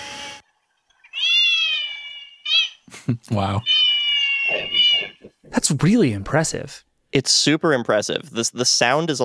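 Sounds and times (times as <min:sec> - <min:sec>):
vacuum cleaner running: 0:00.0 - 0:00.4
cat meowing heard through earbuds in ambient listening mode: 0:01.2 - 0:02.7, 0:03.6 - 0:05.4
speech: 0:03.1 - 0:03.8, 0:04.5 - 0:09.2.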